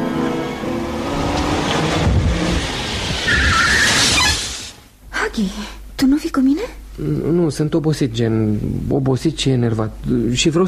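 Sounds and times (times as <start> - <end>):
taxi engine and tire noise pulling up on a street: 0.0 - 4.8
taxi brake squeal: 2.6 - 4.8
speech: 5.4 - 10.6.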